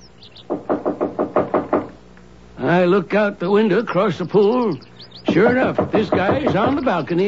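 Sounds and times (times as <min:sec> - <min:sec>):
fist pounding hard on a door: 0:00.5 - 0:02.0, 0:05.3 - 0:07.0
speech: 0:02.7 - 0:07.2.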